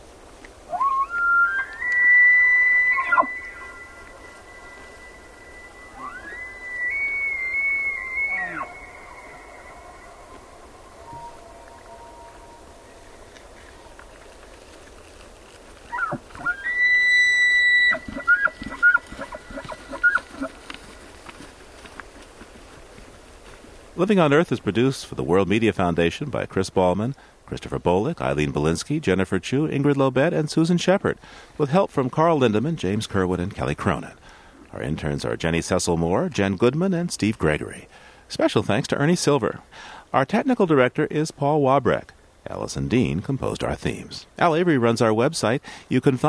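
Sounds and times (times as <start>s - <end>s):
two elk bugling across an open meadow: 0.7s - 15.2s, 15.8s - 22.0s
speech: 24.0s - 46.2s.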